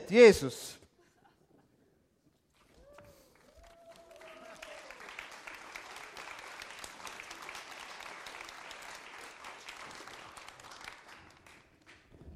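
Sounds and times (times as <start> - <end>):
speech: 0.1 - 0.8
church audience applause at a baptism service: 2.8 - 12.3.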